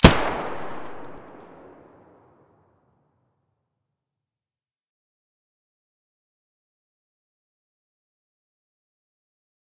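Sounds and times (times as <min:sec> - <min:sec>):
SA80 rifle gunshot: 0:00.0 - 0:02.0.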